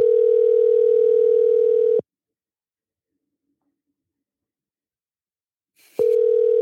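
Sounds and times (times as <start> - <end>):
telephone ringing tone of an unanswered call: 0.0 - 2.0, 6.0 - 6.6.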